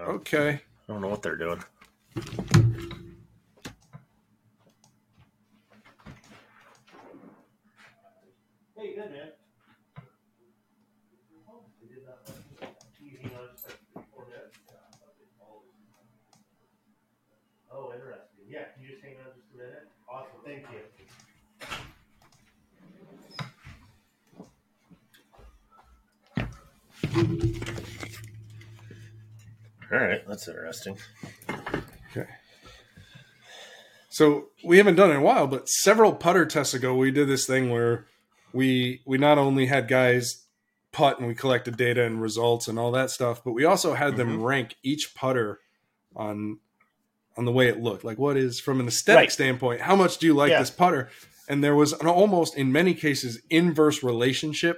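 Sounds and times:
speech: 0.0s - 2.9s, 29.9s - 31.4s, 32.2s - 32.4s, 34.2s - 40.4s, 41.0s - 46.7s, 47.4s - 54.7s
door opening with a solid thump: 2.2s - 3.2s.

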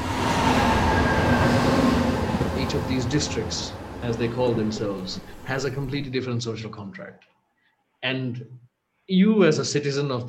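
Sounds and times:
faint metallic tonal whines: 0.0s - 6.2s
train rumbling along the rails: 0.0s - 6.2s
speech: 2.9s - 7.3s, 8.0s - 10.2s.

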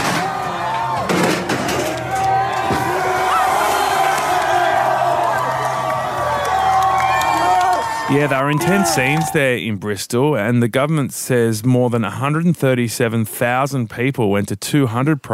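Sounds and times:
sharp bangs: 0.0s - 5.0s
large outdoor protest crowd roaring and cheering: 0.0s - 9.6s
whoops and shouts: 2.0s - 9.4s
speech: 8.1s - 15.3s.

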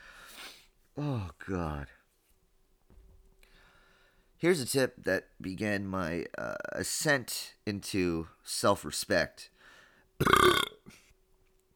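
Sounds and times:
speech: 1.0s - 2.0s, 4.4s - 9.6s, 10.2s - 10.7s
loud rough burp into the microphone: 10.2s - 10.9s.

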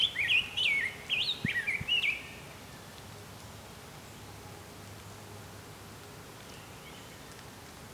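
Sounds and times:
Ovenbird song phrases: 0.0s - 2.9s, 6.4s - 7.4s.

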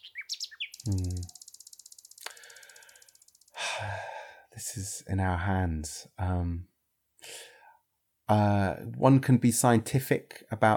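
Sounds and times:
nightingale singing: 0.0s - 3.5s
speech: 0.8s - 1.3s, 4.7s - 6.7s, 8.3s - 10.7s.

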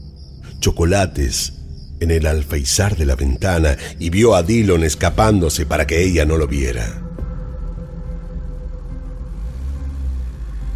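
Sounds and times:
speech: 0.6s - 7.0s
car engine rumbling as the car drives off: 8.4s - 10.7s.

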